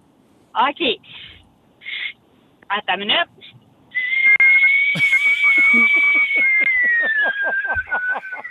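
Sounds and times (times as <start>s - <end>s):
speech: 0.5s - 1.3s, 2.7s - 3.6s, 4.9s - 8.4s
radio caller imitating a whistling electric kettle: 4.0s - 8.4s
laughter: 5.0s - 8.4s.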